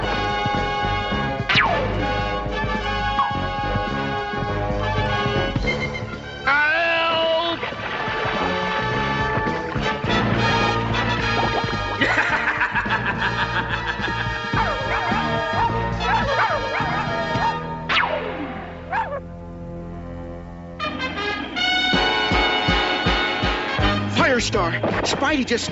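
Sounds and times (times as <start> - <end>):
loud busy music: 0.0 - 25.7
laughter: 11.3 - 16.4
small dog yapping with high-pitched barks: 14.6 - 18.1, 18.9 - 19.2
speech: 25.5 - 25.7.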